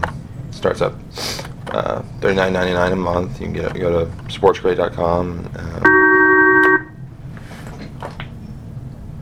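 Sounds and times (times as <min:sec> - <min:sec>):
speech: 0:00.6 - 0:06.0
steady electronic phone call tone: 0:05.9 - 0:06.9.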